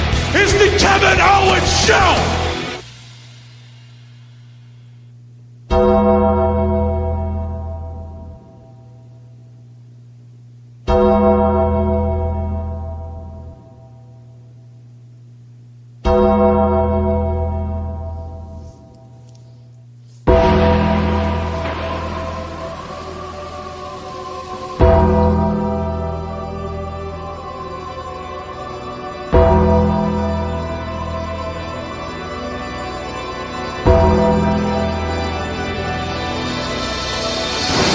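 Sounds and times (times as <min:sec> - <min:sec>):
speech: 0:00.7 - 0:02.5
low steady droning hum: 0:02.2 - 0:37.9
gong being struck: 0:05.7 - 0:09.3, 0:10.9 - 0:14.2, 0:16.1 - 0:19.0, 0:20.3 - 0:37.9.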